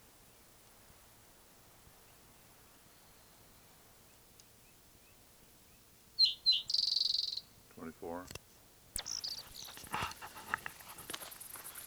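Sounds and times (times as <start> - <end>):
bird singing: 2.1 - 8.4, 9.0 - 11.8
speech: 7.8 - 8.4.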